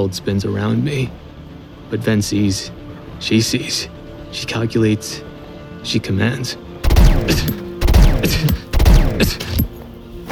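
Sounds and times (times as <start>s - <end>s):
speech: 0.0s - 1.3s, 1.9s - 6.6s, 7.2s - 7.6s, 8.2s - 8.6s, 9.2s - 9.7s
sci-fi blaster shots fired at a tether's attachment point: 6.8s - 9.7s.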